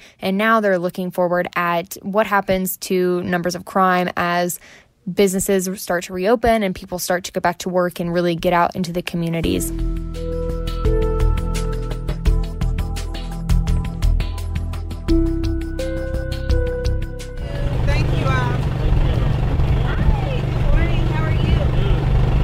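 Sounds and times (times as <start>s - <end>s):
speech: 0.2s - 10.4s
music: 9.4s - 22.0s
mobile market truck engine hum: 9.7s - 22.4s.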